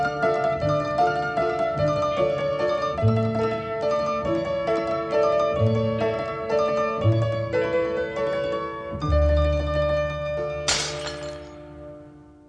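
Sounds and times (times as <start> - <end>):
sustained instrumental music from a song: 0.0 - 12.4
drinking glass shattering, broken by a barmaid: 10.7 - 11.6.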